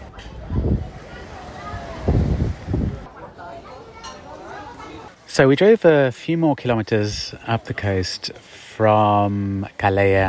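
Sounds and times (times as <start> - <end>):
gentle sea breeze gusting on a promenade in Calella de Palafrugell: 0.0 - 3.7
speech: 5.4 - 10.2.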